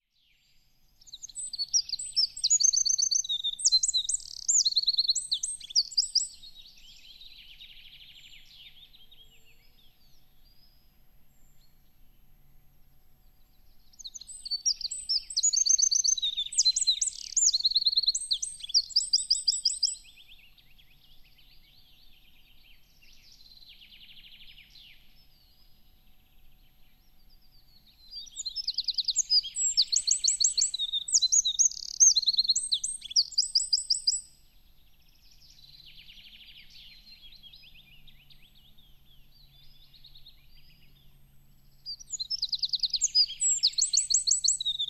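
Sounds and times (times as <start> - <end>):
goldcrest in a forest: 1.0 - 9.2, 14.0 - 20.6, 27.9 - 34.3, 41.9 - 44.8.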